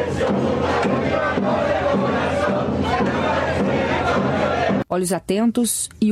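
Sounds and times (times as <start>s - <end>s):
dense crowd of football fans watching the Spain versus Argentina final cheering: 0.0s - 4.8s
speech: 5.0s - 6.0s.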